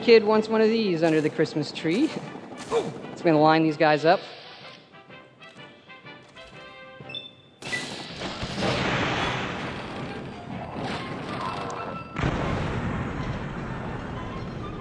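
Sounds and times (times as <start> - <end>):
speech: 0.0 - 4.4
heavy blast in video game: 7.6 - 14.8
video game mini nuclear bomb catapult crash: 7.6 - 14.8.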